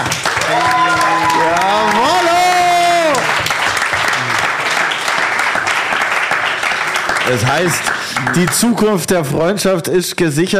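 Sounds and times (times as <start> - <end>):
audience applause: 0.0 - 9.0
speech: 7.3 - 10.5.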